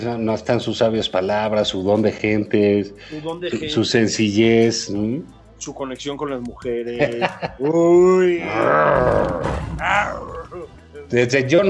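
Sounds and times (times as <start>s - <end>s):
speech: 0.0s - 11.6s
laughter: 6.9s - 9.3s
Bengal tiger deep loud roar and throaty bellow: 8.4s - 10.5s.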